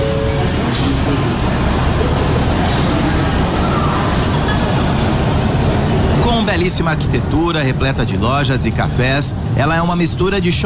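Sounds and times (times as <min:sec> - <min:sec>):
crowd murmur at Union Station in Washington, D.C.: 0:00.0 - 0:07.2
low rumble of vehicles: 0:00.0 - 0:10.6
speech: 0:06.5 - 0:10.6.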